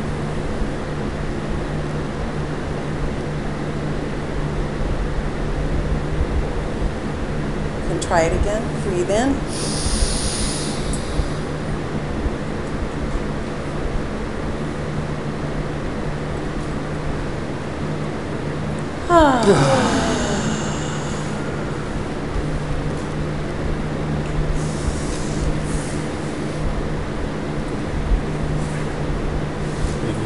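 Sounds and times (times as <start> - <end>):
steady low hum: 0.0 - 30.2
speech: 8.1 - 9.8, 19.2 - 20.0
person yawning: 19.0 - 22.3.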